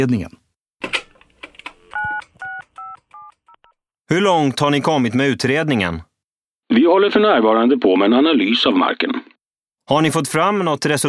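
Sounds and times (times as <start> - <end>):
speech: 0.0 - 0.4, 4.1 - 6.1, 6.7 - 9.3, 9.9 - 11.0
telephone dialing tones: 0.8 - 3.8.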